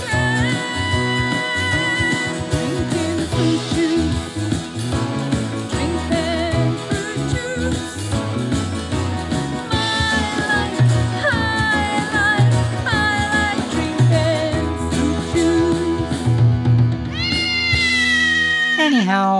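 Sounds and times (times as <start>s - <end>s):
steady musical backing: 0.0s - 19.3s
cat meowing and yowling in a sing-song way: 17.1s - 19.1s.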